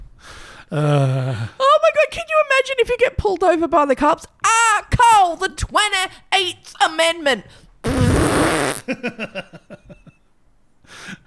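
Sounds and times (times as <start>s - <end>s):
speech: 0.7s - 1.6s, 2.2s - 7.6s, 8.8s - 9.8s
loud breathy fart with sputtering pops: 7.8s - 8.8s.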